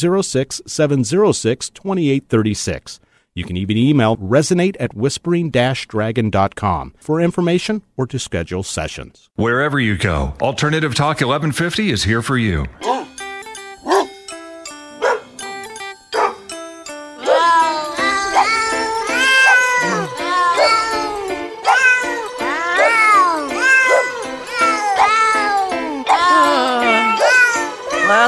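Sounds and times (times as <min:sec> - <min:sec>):
speech: 0:00.0 - 0:13.1
sparse plucked notes: 0:12.8 - 0:28.2
steady musical backing: 0:12.8 - 0:28.2
cat meows pitched to carry a melody in a holiday novelty song: 0:17.2 - 0:28.2.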